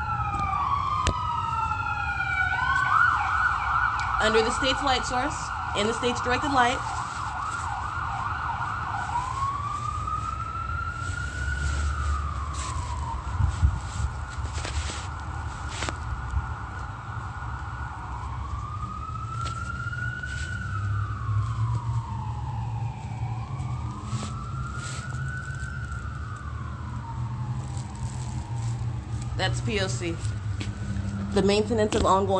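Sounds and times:
fire department sirens wailing: 0.0s - 32.3s
low rumble of traffic and engine noise: 0.0s - 32.3s
speech: 4.2s - 7.0s, 29.6s - 30.4s, 31.4s - 32.3s.

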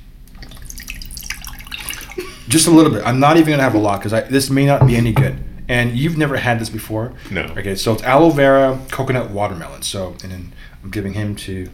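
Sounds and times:
beverage poured from can into mug: 0.3s - 2.5s
speech: 2.5s - 11.7s.

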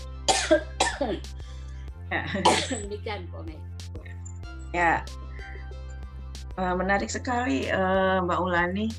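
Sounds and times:
person coughing dry harsh hacking coughs: 0.3s - 1.3s, 2.3s - 2.9s
speech: 0.5s - 1.4s, 2.1s - 4.0s, 4.7s - 5.2s, 6.6s - 8.9s.

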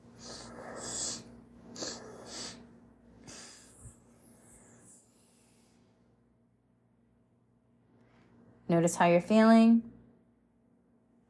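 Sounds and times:
two quick airy inhales through the nose: 0.1s - 5.8s
long soft breath out through the mouth in a guided breathing exercise: 0.2s - 5.8s
speech: 8.7s - 9.9s.

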